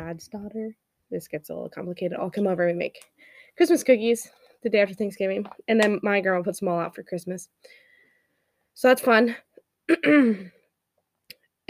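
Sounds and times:
speech: 0.1s - 7.8s, 8.8s - 10.6s
throat clearing: 9.9s - 10.5s.

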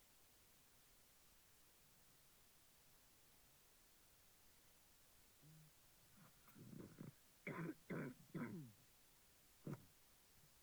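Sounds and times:
person coughing: 6.6s - 8.7s.

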